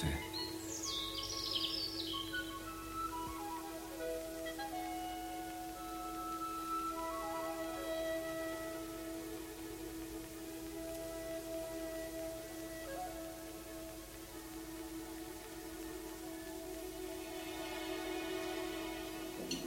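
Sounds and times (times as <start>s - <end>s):
small bird chirping in a large hickory tree overlooking a square: 0.0s - 2.6s
thin whistled tones sliding downward: 0.0s - 19.6s.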